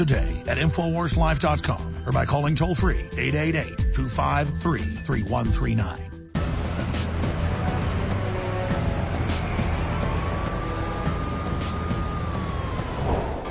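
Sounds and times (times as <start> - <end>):
speech: 0.0 - 6.1
steady engine rumble at a classic car show in Austin Texas: 6.4 - 13.4.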